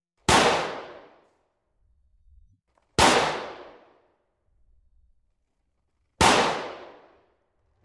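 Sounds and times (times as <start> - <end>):
pistol gunshot: 0.2 - 1.2, 3.0 - 4.0, 6.2 - 7.3.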